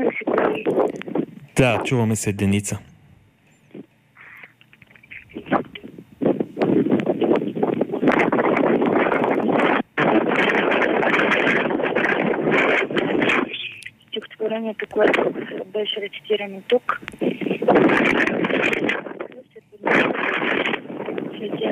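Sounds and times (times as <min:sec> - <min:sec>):
wind buffeting a microphone on a windy summit: 0:00.0 - 0:01.5, 0:05.1 - 0:13.7, 0:14.4 - 0:16.0, 0:16.9 - 0:21.7
speech: 0:01.6 - 0:02.9, 0:15.8 - 0:17.1.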